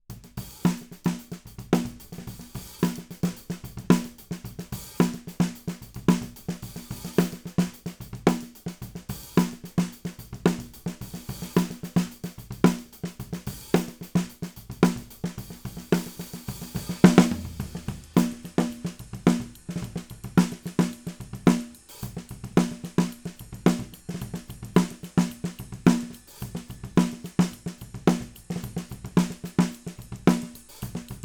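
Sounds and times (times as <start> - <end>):
snare drum: 0.0 - 31.2.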